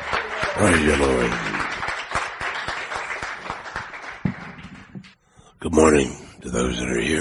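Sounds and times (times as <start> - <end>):
audience clapping and cheering: 0.0 - 5.2
speech: 0.6 - 1.6, 5.8 - 7.2.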